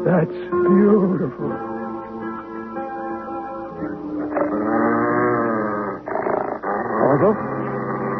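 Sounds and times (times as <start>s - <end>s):
speech: 0.1s - 1.7s
dog growling: 4.2s - 8.1s.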